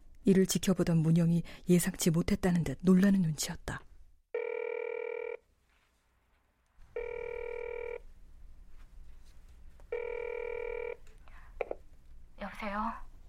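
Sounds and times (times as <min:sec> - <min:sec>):
speech: 0:00.3 - 0:03.9
phone ringback tone: 0:04.3 - 0:05.4, 0:06.9 - 0:08.0, 0:09.9 - 0:11.0.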